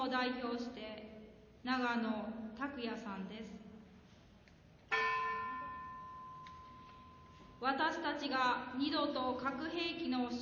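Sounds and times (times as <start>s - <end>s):
speech: 0.0s - 3.7s, 7.6s - 10.4s
church bell struck: 4.9s - 7.6s.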